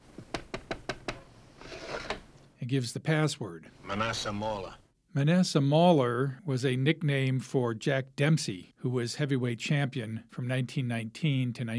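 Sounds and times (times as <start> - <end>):
knocking on a wooden door: 0.2 - 1.2
speech: 2.7 - 11.7.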